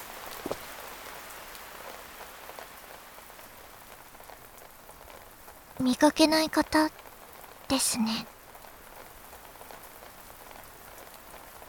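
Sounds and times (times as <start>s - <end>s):
steady rain pattering on a surface: 0.0s - 11.6s
speech: 5.8s - 7.0s, 7.7s - 8.3s.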